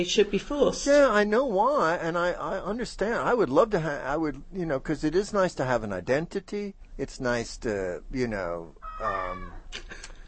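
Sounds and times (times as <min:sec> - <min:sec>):
speech: 0:00.0 - 0:10.0
cat meowing: 0:08.8 - 0:09.7.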